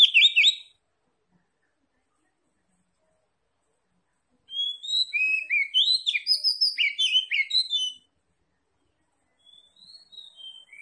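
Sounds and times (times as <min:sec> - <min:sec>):
Oriental magpie-robin singing chirpy whistled notes: 0:00.0 - 0:00.8, 0:04.5 - 0:08.1, 0:09.4 - 0:10.8.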